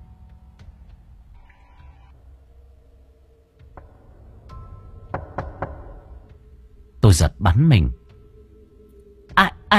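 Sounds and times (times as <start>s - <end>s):
sharp dry knocking on a door at night: 3.6s - 6.5s
speech: 7.1s - 8.0s, 9.4s - 9.7s.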